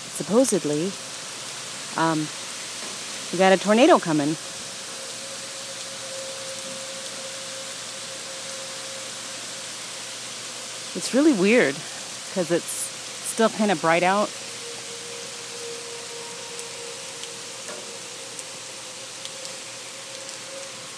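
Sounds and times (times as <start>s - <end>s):
steady rain: 0.0s - 20.9s
speech: 0.2s - 1.1s, 2.0s - 2.4s, 3.3s - 4.5s, 11.0s - 12.8s, 13.4s - 14.4s.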